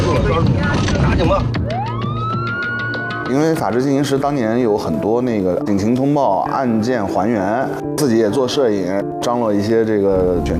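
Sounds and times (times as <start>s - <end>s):
speech: 0.1s - 1.9s, 3.3s - 10.5s
police car siren wailing during a road chase with a van: 1.5s - 3.6s.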